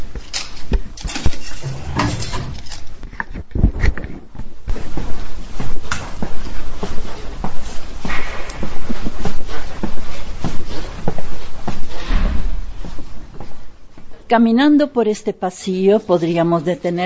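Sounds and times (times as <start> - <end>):
shuffling footsteps: 0.0 - 17.0
heavy security door opening and shutting: 1.1 - 2.9
speech: 14.3 - 17.0.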